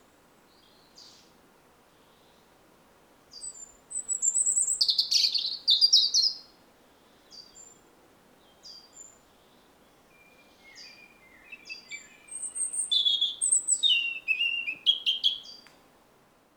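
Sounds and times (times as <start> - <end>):
European robin song of whistles and twittering: 3.3 - 6.5, 9.8 - 15.8.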